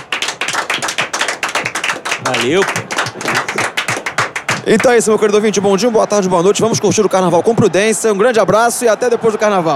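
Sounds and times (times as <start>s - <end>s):
steady brisk hand clapping: 0.0s - 5.0s
speech: 2.3s - 3.4s, 4.7s - 9.7s.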